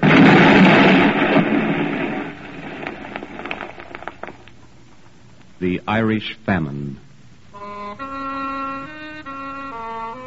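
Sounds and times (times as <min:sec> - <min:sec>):
loud rumbling explosion: 0:00.0 - 0:04.5
scattered crackles and falling debris: 0:00.0 - 0:05.5
speech: 0:05.6 - 0:07.0.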